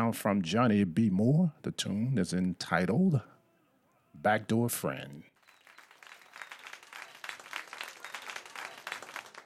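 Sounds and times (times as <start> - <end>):
speech: 0.0 - 3.3, 4.2 - 5.3
crowd applauding: 5.4 - 9.4.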